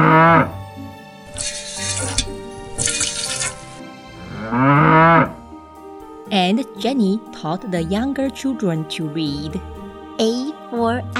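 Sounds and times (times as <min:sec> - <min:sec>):
rushing splashing liquid: 0:02.8 - 0:03.8
cow mooing: 0:04.2 - 0:05.4
speech: 0:06.5 - 0:11.1.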